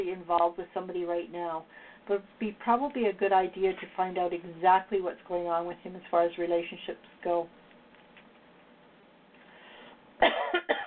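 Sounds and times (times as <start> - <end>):
speech: 0.2 - 7.6, 10.2 - 10.7
person coughing from a tickle in the throat: 10.2 - 10.8.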